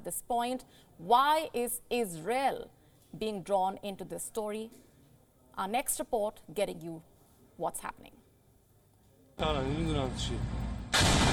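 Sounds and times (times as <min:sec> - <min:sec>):
speech: 0:00.0 - 0:04.9, 0:05.6 - 0:08.2, 0:09.4 - 0:10.7
loud booming explosion from drone attack on military industry factory: 0:10.4 - 0:11.3.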